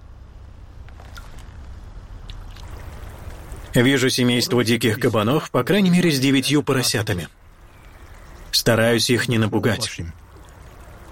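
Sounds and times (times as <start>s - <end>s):
low rumble of rushing water at the dam: 0.7s - 11.0s
hands washing in water: 2.2s - 3.7s
speech: 3.7s - 7.4s, 8.7s - 10.2s.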